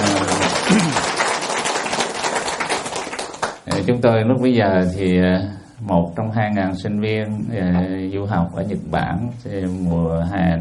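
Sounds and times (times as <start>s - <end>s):
brief low voice murmur: 0.0s - 1.1s
crowd applauding: 0.0s - 3.8s
speech: 3.9s - 10.5s.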